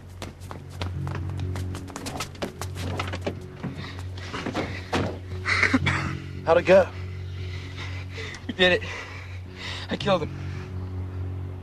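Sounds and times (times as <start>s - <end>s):
people running across a parking lot: 0.0s - 3.8s
low steady hum: 0.0s - 11.6s
speech: 6.5s - 7.0s, 8.6s - 9.0s, 9.9s - 10.4s.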